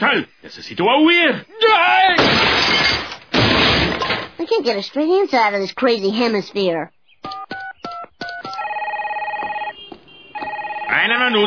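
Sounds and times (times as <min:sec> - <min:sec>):
speech: 0:00.0 - 0:03.0, 0:04.5 - 0:07.5, 0:10.9 - 0:11.4
car telephone ringing with electronic bursts and warbling trill: 0:07.3 - 0:11.4.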